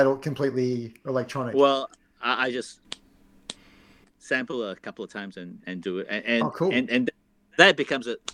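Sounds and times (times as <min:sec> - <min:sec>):
speech: 0:00.0 - 0:02.8, 0:04.2 - 0:08.3
quiet hum: 0:00.0 - 0:08.3
crisp finger snaps: 0:02.9 - 0:03.7.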